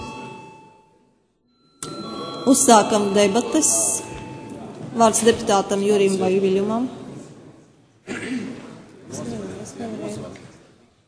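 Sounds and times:
parliament chairman's electric bell ringing before a vote: 0:00.0 - 0:00.9, 0:01.6 - 0:05.8
speech: 0:02.5 - 0:04.2, 0:05.0 - 0:07.0.

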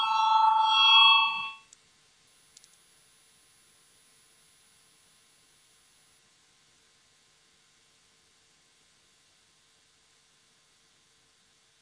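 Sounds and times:
electronic parliamentary voting bell ringing before a vote: 0:00.0 - 0:01.6
faint click: 0:02.5 - 0:02.8.

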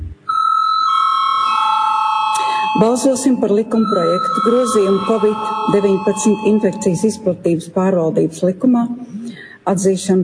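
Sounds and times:
electronic bell tone in a parliament chamber calling a vote: 0:00.3 - 0:07.4
speech: 0:02.8 - 0:10.2.

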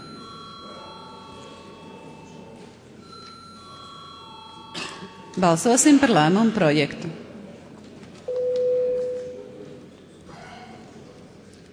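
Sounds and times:
bell ringing to call members of parliament to a vote: 0:00.0 - 0:06.5
speech: 0:05.4 - 0:07.2.

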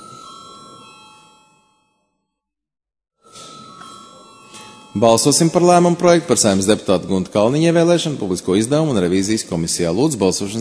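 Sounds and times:
electric voting bell in the Saeima ringing to call a vote: 0:00.0 - 0:02.4, 0:03.2 - 0:06.5
speech: 0:05.0 - 0:10.5.

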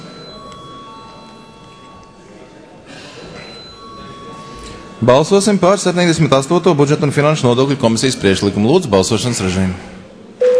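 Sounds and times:
parliamentary voting bell ringing: 0:00.0 - 0:02.7, 0:03.3 - 0:06.6
low murmur of voices: 0:00.0 - 0:10.4
speech: 0:05.0 - 0:10.0.

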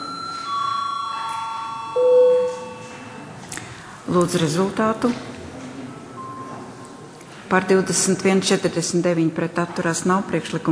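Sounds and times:
parliamentary chamber electronic voting bell tone: 0:00.0 - 0:03.4
speech: 0:04.1 - 0:05.3, 0:07.5 - 0:10.7.

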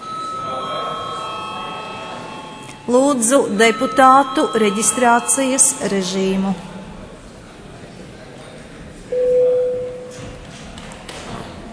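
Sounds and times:
electric bell ringing in a parliament chamber: 0:00.0 - 0:07.0
faint murmur: 0:00.0 - 0:11.7
speech: 0:02.9 - 0:06.7.

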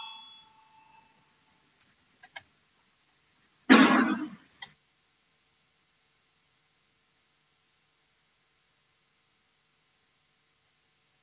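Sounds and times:
bell rung to call a vote on a legislative proposal: 0:00.0 - 0:01.1
person coughing: 0:03.7 - 0:04.4.

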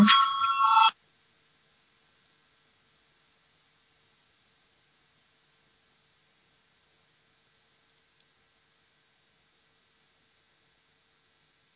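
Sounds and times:
parliamentary voting bell ringing: 0:00.0 - 0:00.9.

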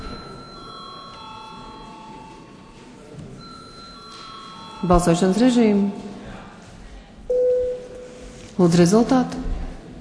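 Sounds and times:
parliamentary voting bell electronic chime: 0:00.0 - 0:02.8, 0:03.4 - 0:06.0
faint murmur: 0:00.0 - 0:09.9
speech: 0:04.8 - 0:06.1, 0:08.6 - 0:09.4.

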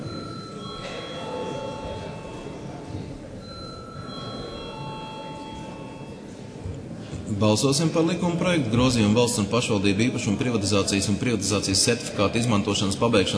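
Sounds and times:
bell rung in a parliament chamber to call members to a vote: 0:00.0 - 0:02.6, 0:03.4 - 0:06.2
speech: 0:07.3 - 0:13.3.

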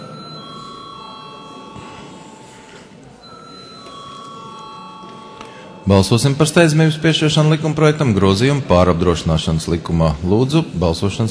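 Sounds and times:
parliament session bell ringing electrically to call members to a vote: 0:00.0 - 0:07.3
speech: 0:05.8 - 0:11.2.

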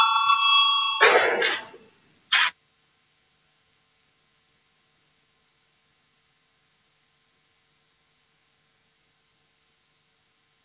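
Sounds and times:
parliamentary voting bell ringing: 0:00.0 - 0:01.8.

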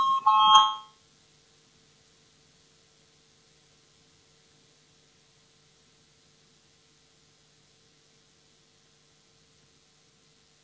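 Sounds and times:
parliament voting bell ringing: 0:00.0 - 0:01.0.

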